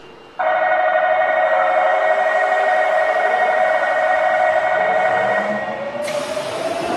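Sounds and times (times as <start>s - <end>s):
Mitsubishi VVVF inverter train whine: 0.1s - 6.8s.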